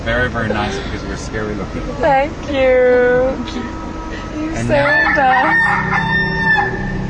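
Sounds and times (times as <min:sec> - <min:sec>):
speech: 0:00.0 - 0:06.6
steady hum: 0:00.0 - 0:07.0
rooster crowing from a television: 0:04.6 - 0:07.0.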